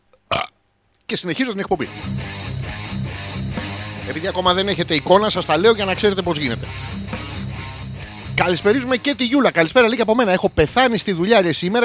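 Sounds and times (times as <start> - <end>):
loud burp after drinking water: 0.3 - 0.6
speech: 1.1 - 2.5, 4.1 - 7.0, 8.4 - 11.8.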